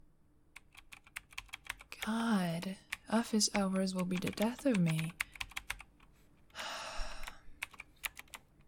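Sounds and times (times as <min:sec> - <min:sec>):
typing on a computer keyboard: 0:00.6 - 0:02.1, 0:02.8 - 0:06.1, 0:07.2 - 0:08.6
speech: 0:02.0 - 0:05.2.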